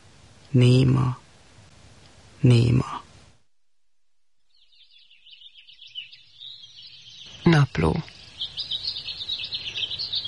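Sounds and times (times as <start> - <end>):
speech: 0.5 - 1.2, 2.4 - 3.0, 7.5 - 8.7
blackbird calling with rapid high-pitched chirps: 4.5 - 10.2.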